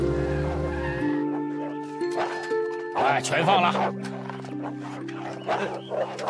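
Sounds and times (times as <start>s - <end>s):
dogs growling: 0.1s - 6.2s
speech: 3.2s - 4.1s, 5.5s - 6.2s.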